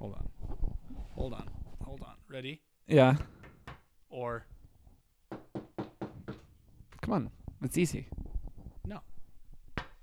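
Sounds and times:
speech: 0:00.0 - 0:00.3, 0:01.2 - 0:03.3, 0:04.2 - 0:04.5, 0:07.1 - 0:08.2, 0:08.9 - 0:09.1
knocking on wood: 0:03.3 - 0:03.9, 0:05.3 - 0:06.7, 0:09.8 - 0:10.0.

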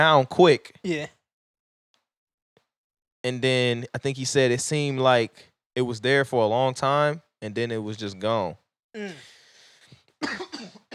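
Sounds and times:
speech: 0:00.0 - 0:01.2, 0:03.2 - 0:09.4, 0:10.2 - 0:10.8
person coughing: 0:10.2 - 0:10.9.

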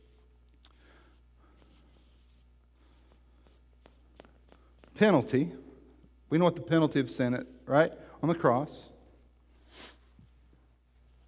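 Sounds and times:
scratching and tapping of words being written on a board: 0:01.1 - 0:05.0
speech: 0:05.0 - 0:05.6, 0:06.3 - 0:08.9.

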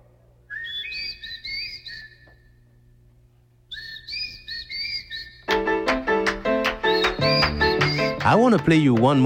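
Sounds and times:
bright whistled melody in a boogaloo song: 0:00.5 - 0:02.4, 0:03.7 - 0:08.6
speech: 0:08.3 - 0:09.2.

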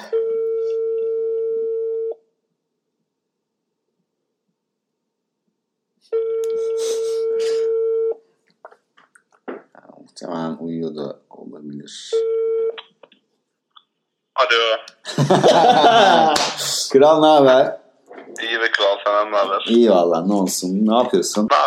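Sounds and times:
phone ringback tone: 0:00.0 - 0:02.2, 0:06.1 - 0:08.2, 0:12.2 - 0:12.8
speech: 0:10.2 - 0:12.6, 0:14.4 - 0:17.8, 0:18.4 - 0:21.6
laughter: 0:15.0 - 0:16.8.

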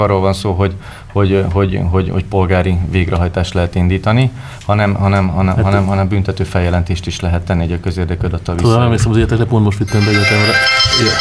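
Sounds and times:
speech: 0:00.0 - 0:11.2
phone ringing with a bright electronic tone: 0:09.9 - 0:11.2.

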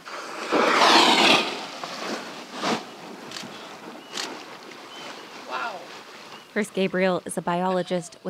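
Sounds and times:
humpback whale breaking the water surface in Glacier Bay: 0:00.0 - 0:06.3
water splashing and sloshing outdoors: 0:00.0 - 0:08.2
speech: 0:06.6 - 0:08.2.

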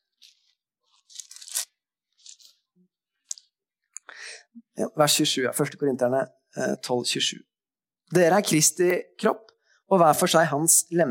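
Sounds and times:
pages of a Bible flipped: 0:00.0 - 0:02.7
speech: 0:04.8 - 0:07.5, 0:08.1 - 0:11.1.

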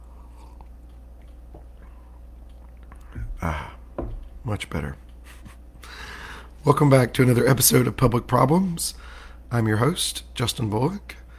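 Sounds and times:
person sipping coffee: 0:00.0 - 0:03.9
mouth and swallowing sounds: 0:00.0 - 0:04.4
steady low electrical hum: 0:00.0 - 0:11.3
speech: 0:03.4 - 0:03.8, 0:04.4 - 0:05.0, 0:06.6 - 0:11.2.

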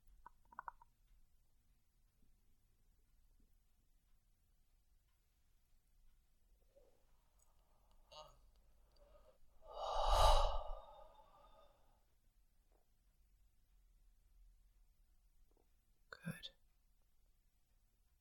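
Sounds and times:
deep breathing from the lower belly: 0:09.0 - 0:11.8
soft exhale: 0:09.0 - 0:11.8.

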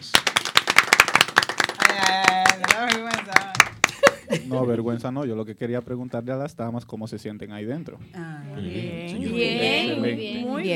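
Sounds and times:
brisk applause of sharp hand claps: 0:00.0 - 0:04.2
speech: 0:04.4 - 0:10.7.

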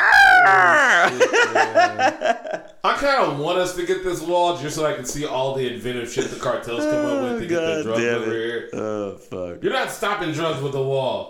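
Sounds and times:
person's voice imitating a seagull: 0:00.0 - 0:01.2, 0:06.8 - 0:09.6
laughter: 0:00.5 - 0:02.8, 0:06.1 - 0:09.6
speech: 0:01.1 - 0:02.4, 0:03.0 - 0:11.2.

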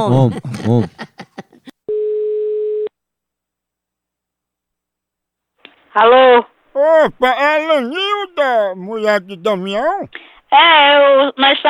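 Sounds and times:
speech: 0:00.0 - 0:01.0, 0:06.0 - 0:11.6
laughter: 0:00.0 - 0:01.8
outgoing telephone call ringing tone: 0:01.9 - 0:02.9.

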